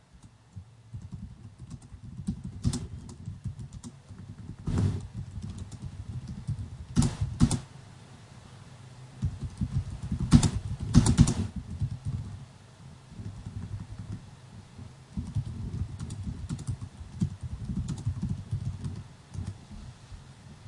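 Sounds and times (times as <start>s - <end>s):
typing on a computer keyboard: 0.1s - 7.6s, 9.2s - 12.4s, 13.2s - 14.2s, 15.2s - 19.6s.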